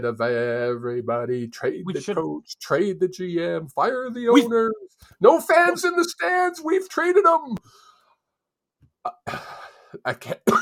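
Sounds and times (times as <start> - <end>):
speech: 0.0 - 7.9, 9.0 - 10.6
throat-clearing grunt: 9.1 - 9.6.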